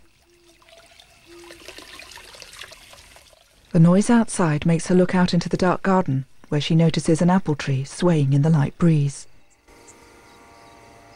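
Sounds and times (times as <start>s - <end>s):
water running at a sink during washing up: 0.0s - 3.8s
speech: 3.8s - 9.3s.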